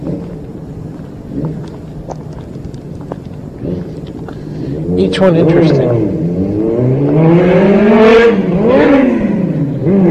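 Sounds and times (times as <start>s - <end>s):
speech: 1.4s - 1.7s, 5.0s - 6.2s
motorcycle engine roaring as it passes: 3.6s - 4.0s, 4.7s - 10.0s.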